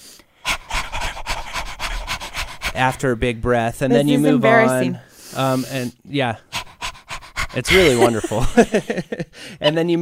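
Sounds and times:
human voice imitating a Chihuahua panting: 0.4 - 3.2, 6.4 - 8.4
speech: 2.8 - 6.5, 7.6 - 10.0
laughter: 7.5 - 9.8.

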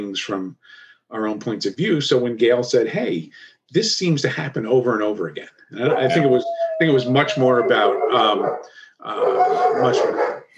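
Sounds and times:
speech: 0.0 - 10.4
German shepherd dogs barking at someone in the driveway: 5.8 - 10.5.

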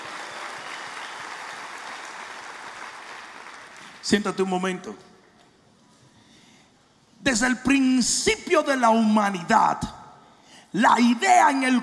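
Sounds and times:
large crowd applauding: 0.0 - 4.1
speech: 4.0 - 5.1, 7.3 - 10.0, 10.7 - 11.8.

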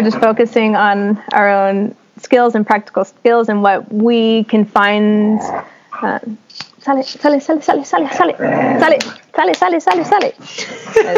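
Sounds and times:
speech: 0.0 - 11.1
sustained rumbling dog growl: 8.3 - 8.9.

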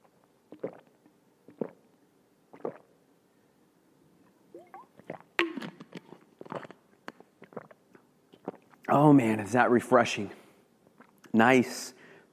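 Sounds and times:
drinking from a water bottle with gulps and swallowing: 0.5 - 1.9, 2.5 - 2.9, 4.6 - 8.9
wet mouth clicks: 0.5 - 1.9, 2.5 - 2.9, 4.6 - 8.9, 10.9 - 11.3
speech: 8.9 - 10.4, 11.4 - 12.0.

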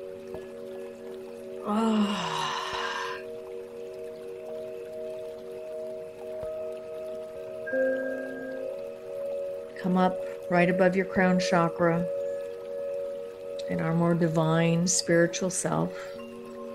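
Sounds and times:
soft steady tonal music: 0.0 - 16.7
speech: 1.6 - 2.1, 9.8 - 12.2, 13.7 - 16.2
deep breath during a guided meditation: 1.8 - 3.2.

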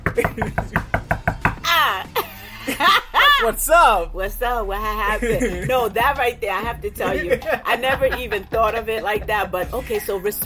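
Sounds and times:
sharp loud knocks on a door: 0.0 - 1.6
speech: 0.2 - 0.8, 3.4 - 10.4
laughter: 2.1 - 3.9, 4.8 - 10.3.

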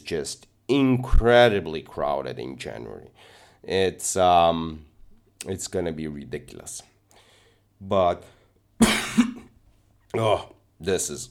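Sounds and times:
speech: 0.1 - 6.9, 7.8 - 9.0, 10.1 - 11.2
person with a lingering cough coughing: 8.8 - 9.5.

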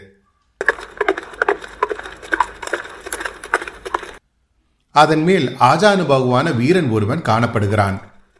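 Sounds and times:
horse hoofbeats clattering at speed along a riverbank: 0.6 - 4.2
speech: 5.0 - 8.1.

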